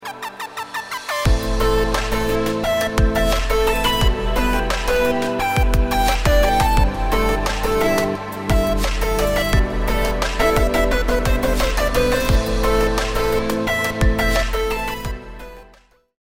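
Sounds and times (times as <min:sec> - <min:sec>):
sad EDM electronic music: 0:00.0 - 0:15.9.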